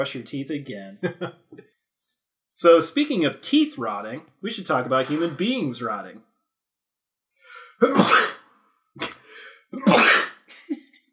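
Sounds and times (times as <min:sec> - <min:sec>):
speech: 0:00.0 - 0:01.4, 0:02.6 - 0:06.3, 0:07.8 - 0:08.3
sharp sniff or snort: 0:04.9 - 0:05.6, 0:09.0 - 0:09.6
loud sneeze: 0:07.8 - 0:08.4, 0:09.0 - 0:10.5.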